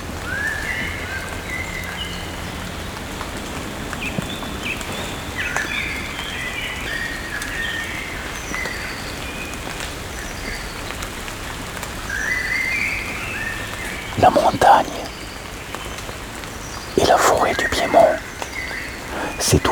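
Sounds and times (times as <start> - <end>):
light rain pattering under trees: 0.0 - 19.7.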